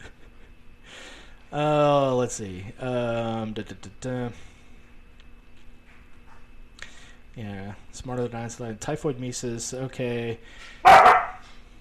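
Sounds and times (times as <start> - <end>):
speech: 1.5 - 4.5, 7.4 - 11.2
dog barking: 10.8 - 11.4.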